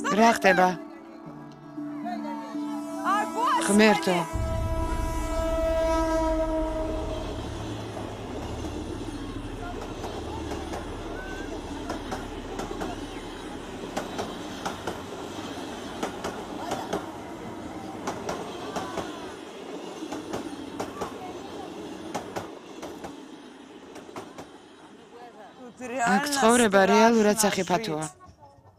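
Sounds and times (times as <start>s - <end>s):
speech: 0.1s - 0.8s, 3.6s - 4.4s, 26.6s - 28.2s
train horn: 2.0s - 19.4s
train rumbling on railway tracks: 2.6s - 28.2s.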